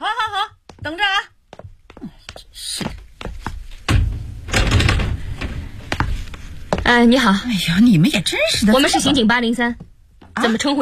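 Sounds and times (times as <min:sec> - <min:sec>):
sharp knocks and hollow thumps: 0:00.6 - 0:07.0
door being opened: 0:03.8 - 0:06.1
speech: 0:06.9 - 0:10.7.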